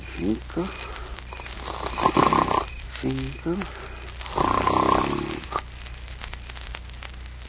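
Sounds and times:
speech: 0:00.2 - 0:00.9, 0:03.0 - 0:04.5
soft snort: 0:01.6 - 0:02.7, 0:04.2 - 0:05.6
man snoring while asleep: 0:01.6 - 0:05.6.

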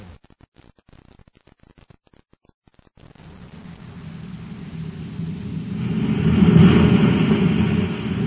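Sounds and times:
faint crackle: 0:00.0 - 0:08.2
rocket ship blasting off with a deep rumbling roar: 0:03.3 - 0:08.2.

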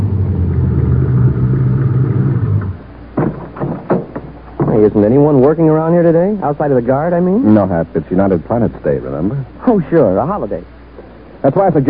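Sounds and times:
car engine rumbling as car pulls through a gate and stops: 0:00.0 - 0:05.9
short sharp knocks: 0:03.2 - 0:04.9
speech: 0:04.8 - 0:10.8, 0:11.4 - 0:11.8.

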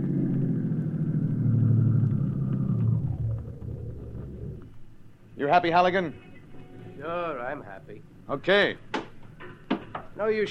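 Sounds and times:
car engine rumbling while driving into a lot: 0:00.0 - 0:05.4
speech: 0:05.4 - 0:06.3, 0:07.0 - 0:08.9, 0:10.2 - 0:10.4.

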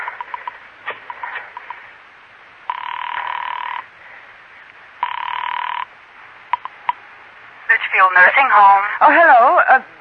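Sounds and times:
telephone ringing: 0:00.2 - 0:01.8, 0:02.7 - 0:03.9, 0:05.0 - 0:05.9
speech: 0:07.9 - 0:09.9.

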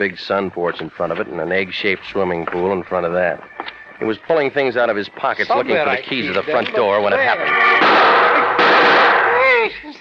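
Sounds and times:
speech: 0:00.0 - 0:08.1
gunshot fired at a man outside his front door: 0:07.8 - 0:09.4.

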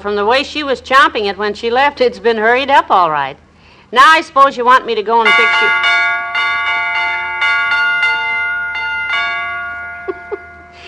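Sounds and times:
speech: 0:00.0 - 0:06.0
doorbell chiming a melody: 0:05.3 - 0:10.8.

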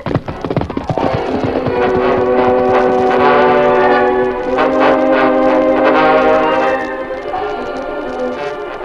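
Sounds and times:
work train rumbling: 0:00.0 - 0:08.8
work train sustained whistle-like tones: 0:01.7 - 0:08.8.

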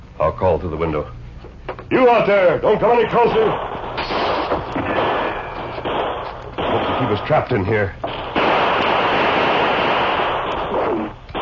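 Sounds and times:
speech: 0:00.2 - 0:01.2, 0:01.9 - 0:04.3, 0:07.0 - 0:08.2
gunshots from expert gunmen around a shack: 0:02.9 - 0:11.4.

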